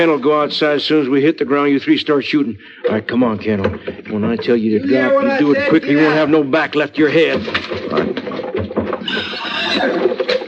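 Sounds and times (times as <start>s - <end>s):
speech: 0.0s - 8.3s
rumbling shuffling and movement: 0.0s - 10.4s
horse whinnying: 9.0s - 10.4s.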